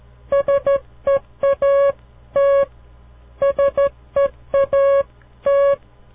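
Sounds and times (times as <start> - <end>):
Morse code tones spelling a word: 0.3 - 2.7, 3.4 - 5.8.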